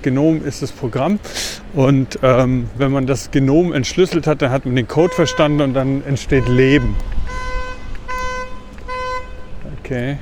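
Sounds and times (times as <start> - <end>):
speech: 0.0 - 7.2, 9.9 - 10.2
low rumble of street noise: 0.0 - 10.2
vehicle horn honking outside: 5.0 - 9.6.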